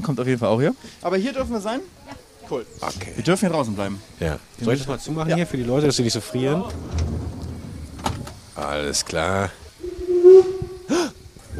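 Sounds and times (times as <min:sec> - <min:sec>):
speech: 0:00.0 - 0:07.2, 0:08.6 - 0:09.6
steam locomotive hissing steam as the train sets off in cold weather: 0:00.0 - 0:11.5
low rumbling: 0:06.1 - 0:11.5
steady whistle-like tone: 0:09.8 - 0:11.2.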